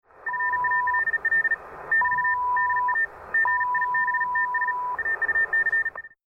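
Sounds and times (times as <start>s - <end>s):
fast Morse code in amateur radio mode: 0.3s - 6.2s.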